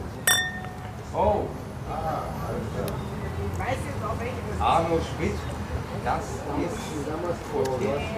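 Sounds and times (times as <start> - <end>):
low murmur: 0.0 - 8.1
wine glasses clinking in a toast at an inn table: 0.3 - 1.0
speech: 4.2 - 8.1.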